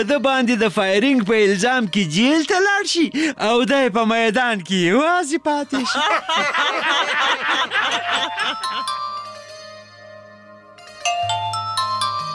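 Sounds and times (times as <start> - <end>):
speech: 0.0 - 9.0
laughter: 5.6 - 8.9
telephone ringing: 7.9 - 10.0, 10.8 - 12.3.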